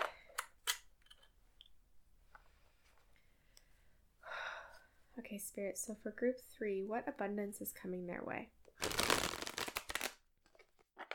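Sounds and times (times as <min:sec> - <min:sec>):
speech: 0:05.2 - 0:08.6
deck of cards being shuffled: 0:08.8 - 0:11.1.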